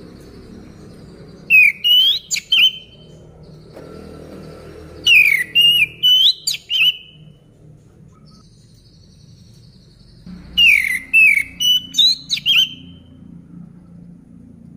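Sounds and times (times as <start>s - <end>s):
orange-headed thrush whistled song: 1.4s - 3.1s, 5.0s - 7.3s, 10.5s - 13.2s.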